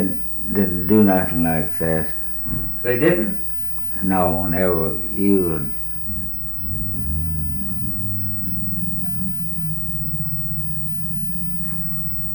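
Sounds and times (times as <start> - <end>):
speech: 0.6 - 3.4, 4.0 - 6.2
old truck or tractor engine idling and revving outdoors: 6.1 - 12.3.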